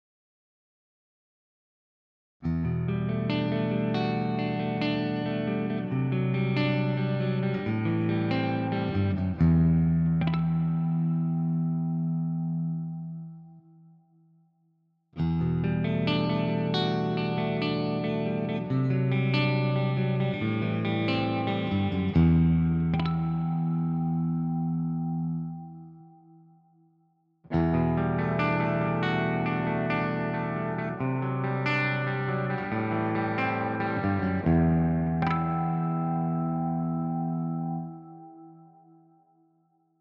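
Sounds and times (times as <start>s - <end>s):
clean electric guitar with full humbucker pickup: 2.4s - 14.1s, 15.2s - 26.7s, 27.5s - 39.5s.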